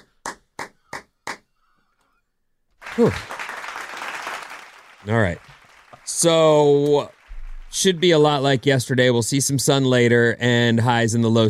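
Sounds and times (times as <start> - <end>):
hands clapping: 2.8 - 8.7
speech: 3.0 - 3.3, 5.0 - 11.4.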